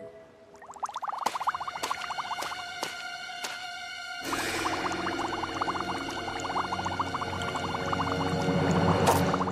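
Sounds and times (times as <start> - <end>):
bubbles popping: 0.6 - 2.6, 4.3 - 9.4.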